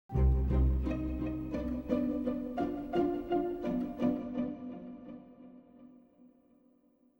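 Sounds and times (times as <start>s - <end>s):
pizzicato music: 0.1s - 6.0s.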